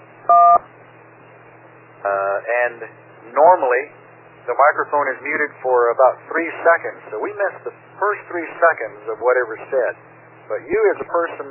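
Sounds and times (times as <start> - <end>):
faint low hum: 0.0 - 11.4
DTMF tone for digit one over amateur radio from an autopatch dialing pad: 0.3 - 0.6
speech: 2.0 - 11.4.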